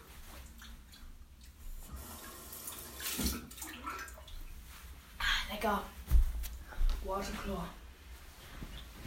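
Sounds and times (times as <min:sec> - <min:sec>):
water running from a tap: 0:01.8 - 0:04.3
speech: 0:05.6 - 0:05.9, 0:07.1 - 0:07.8.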